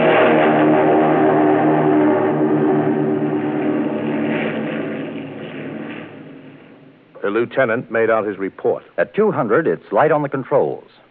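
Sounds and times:
Japanese Zero fighter plane engine revving, taking off down a runway: 0:00.0 - 0:07.3
speech: 0:07.4 - 0:11.0.

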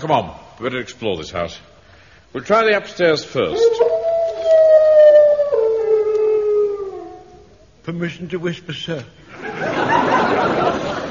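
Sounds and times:
speech: 0:00.0 - 0:01.7, 0:02.3 - 0:03.9, 0:07.9 - 0:09.4
single dog howling: 0:03.5 - 0:07.7
laughter: 0:09.3 - 0:11.0.

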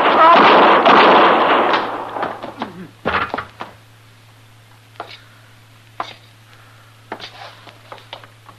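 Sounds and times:
gunshots in a staged radio drama shootout: 0:00.0 - 0:02.6.

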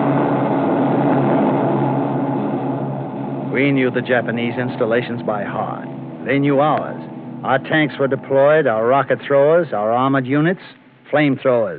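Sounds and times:
reconnaissance propeller planes flying overhead: 0:00.0 - 0:10.5
speech: 0:03.6 - 0:11.7.

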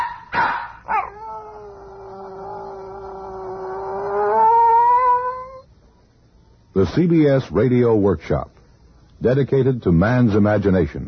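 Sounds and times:
dog yelping: 0:00.0 - 0:05.7
dog howling: 0:00.8 - 0:05.7
speech: 0:06.8 - 0:08.5, 0:09.2 - 0:11.0.

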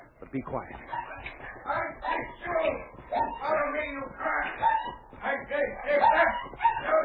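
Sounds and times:
speech: 0:00.3 - 0:01.0
puppy yelping and whimpering in distress from being beaten: 0:00.9 - 0:02.4, 0:03.0 - 0:03.5, 0:04.4 - 0:05.2, 0:06.0 - 0:07.0.

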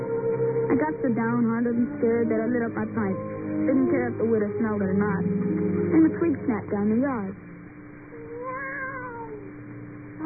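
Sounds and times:
speech: 0:00.8 - 0:07.5
human voice imitating a cat meow: 0:08.2 - 0:09.5.

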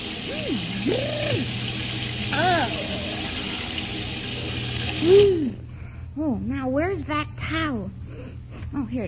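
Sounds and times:
cold shower water running: 0:00.0 - 0:05.6
speech: 0:00.5 - 0:01.6, 0:05.0 - 0:05.4, 0:06.2 - 0:08.0, 0:08.7 - 0:09.0.

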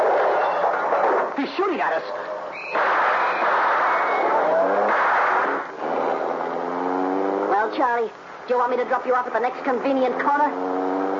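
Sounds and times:
rushing road noise: 0:00.0 - 0:11.1
speech: 0:01.4 - 0:02.9, 0:07.7 - 0:10.9
car speeding off with loud engine roar: 0:02.8 - 0:07.8, 0:09.4 - 0:11.1.

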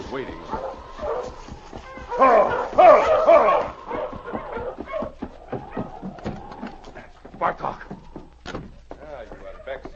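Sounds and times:
speech: 0:00.1 - 0:00.6
sled dog barking and whimpering: 0:00.5 - 0:06.1.

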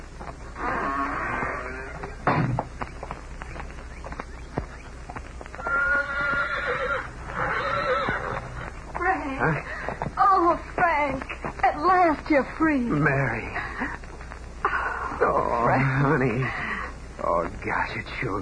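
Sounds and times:
faint hoof clops: 0:00.0 - 0:12.6
horse whinnying outside a prison's main gate: 0:00.6 - 0:02.3, 0:05.6 - 0:08.7
shuffling: 0:01.4 - 0:15.5
speech: 0:12.3 - 0:13.6, 0:16.2 - 0:16.6, 0:17.6 - 0:18.4.

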